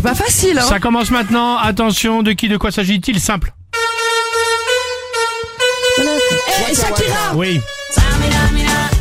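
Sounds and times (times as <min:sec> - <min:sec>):
speech: 0:00.0 - 0:03.6, 0:06.1 - 0:08.6
car horn honking a song melody: 0:03.7 - 0:08.9.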